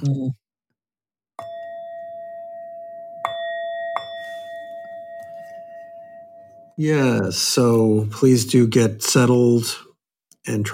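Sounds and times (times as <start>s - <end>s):
speech: 0.0s - 0.4s, 6.8s - 10.7s
Tibetan bell being struck: 1.4s - 6.8s.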